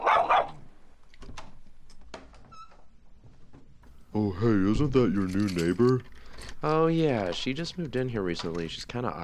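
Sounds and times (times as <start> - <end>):
dog barking: 0.0 - 0.6
speech: 4.2 - 9.2.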